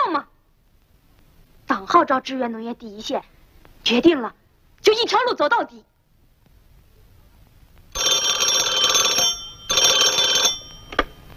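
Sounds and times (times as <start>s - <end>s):
speech: 1.9s - 5.9s
old-style telephone bell ringing: 8.0s - 11.3s.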